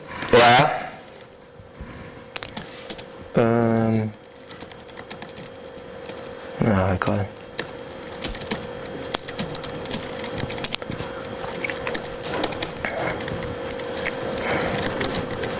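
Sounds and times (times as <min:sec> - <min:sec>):
constant low electrical hum: 0:00.0 - 0:15.5
speech: 0:00.3 - 0:00.8, 0:03.4 - 0:04.2, 0:06.8 - 0:07.4
keyboard typing a small C program: 0:02.4 - 0:06.4, 0:07.1 - 0:15.5.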